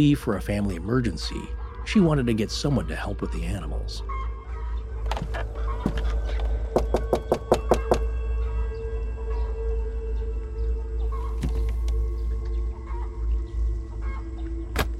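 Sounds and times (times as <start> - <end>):
speech: 0.0 - 4.2
faint birds: 0.0 - 14.9
sharp knocks on a door: 6.7 - 8.1.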